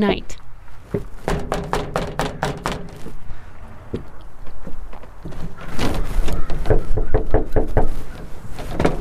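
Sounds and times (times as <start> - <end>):
speech: 0.0 - 1.2
faint noise: 0.0 - 8.9
knocking on the door of a house: 1.2 - 3.0, 6.5 - 7.9.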